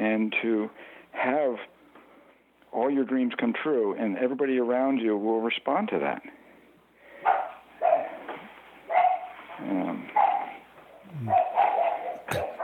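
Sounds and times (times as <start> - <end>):
speech: 0.2 - 1.7, 2.7 - 6.4, 9.6 - 10.3, 11.1 - 11.5
dogs barking: 7.2 - 12.6
dogs whiny yelps: 11.1 - 12.6.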